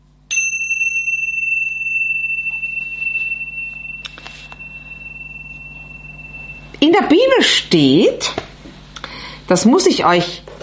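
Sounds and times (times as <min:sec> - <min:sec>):
shimmering jingle: 0:00.3 - 0:07.6
small gong or chime struck: 0:00.3 - 0:08.0
speech: 0:06.8 - 0:08.4, 0:09.5 - 0:10.4.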